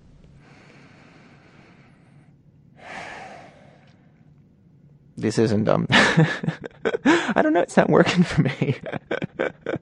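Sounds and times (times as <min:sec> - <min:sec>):
long slow inhale: 0:00.4 - 0:04.2
speech: 0:05.2 - 0:09.3
laughter: 0:05.9 - 0:09.8.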